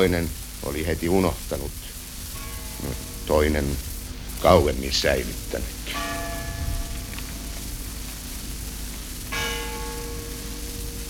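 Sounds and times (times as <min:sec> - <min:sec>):
speech: 0:00.0 - 0:02.0, 0:02.8 - 0:06.2
soft hiss: 0:00.0 - 0:11.0
funeral bells tolling: 0:02.3 - 0:11.0.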